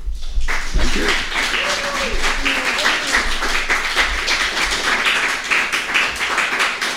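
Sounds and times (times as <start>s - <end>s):
crowd applauding: 0.4s - 6.9s
brief vocal sounds: 0.8s - 1.4s.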